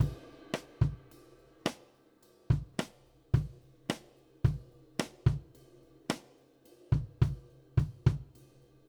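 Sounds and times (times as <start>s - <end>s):
country drums intro: 0.0s - 1.8s, 2.5s - 5.5s, 6.9s - 8.4s.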